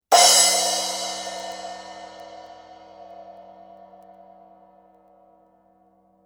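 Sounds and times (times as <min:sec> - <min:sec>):
8-inch splash cymbal: 0:00.1 - 0:04.0.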